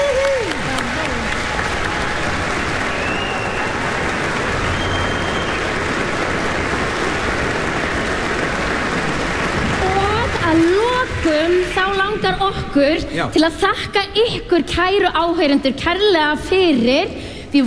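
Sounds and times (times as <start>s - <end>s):
audience applause for conductor and symphony orchestra: 0.0s - 12.6s
speech: 12.3s - 17.6s.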